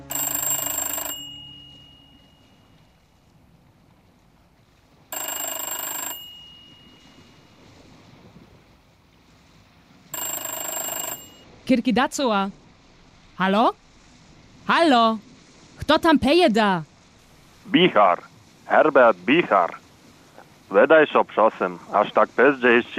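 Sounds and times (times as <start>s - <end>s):
telephone bell ringing: 0.0s - 3.0s, 5.1s - 7.7s, 10.1s - 11.5s
speech: 11.7s - 12.6s, 13.4s - 13.8s, 14.7s - 15.3s, 15.9s - 16.9s, 17.7s - 19.8s, 20.7s - 22.9s.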